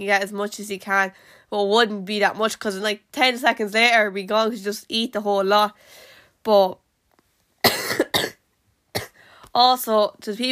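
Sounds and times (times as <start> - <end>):
speech: 0.0 - 6.8, 9.6 - 10.4
harsh coughs from a person sick for a week: 7.6 - 8.4, 9.0 - 9.2.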